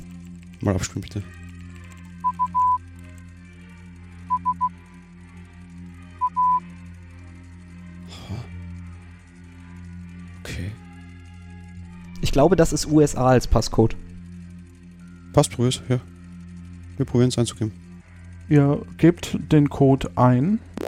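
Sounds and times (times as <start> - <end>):
speech: 0.6 - 1.4, 12.4 - 14.0, 15.4 - 16.1, 17.0 - 17.8, 18.5 - 20.7
Morse code beeps played from loudspeaker: 2.2 - 2.8, 4.3 - 4.7, 6.2 - 6.6.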